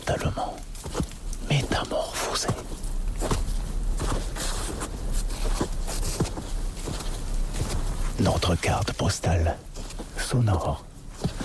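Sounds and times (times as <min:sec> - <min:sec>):
footsteps crunching through heavy wet snow in a snowy forest: 0:00.0 - 0:11.4
low rumble: 0:00.0 - 0:11.4
speech: 0:00.1 - 0:01.1, 0:01.8 - 0:03.4, 0:08.4 - 0:09.7, 0:10.3 - 0:10.9.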